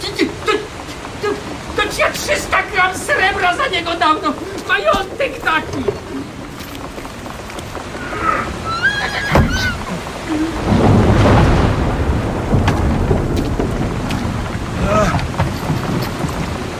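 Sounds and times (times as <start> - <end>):
dense rushing rumbling noise: 0.0 - 16.7
speech: 2.3 - 6.0
horse hitched to a wagon whinnying: 7.9 - 10.1.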